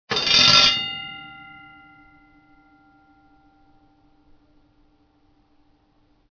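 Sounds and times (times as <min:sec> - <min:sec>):
short starting bell: 0:00.1 - 0:05.0.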